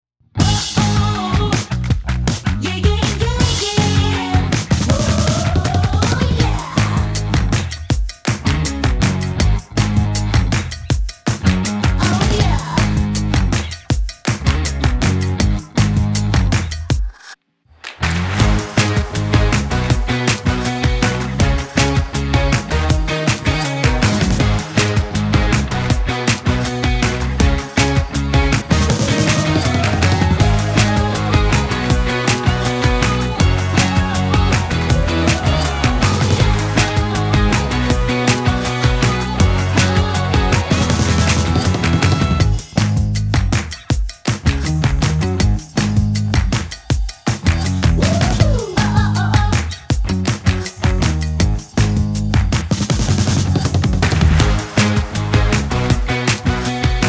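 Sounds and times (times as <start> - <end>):
energetic pop party music: 0.4 - 17.3, 17.9 - 57.0.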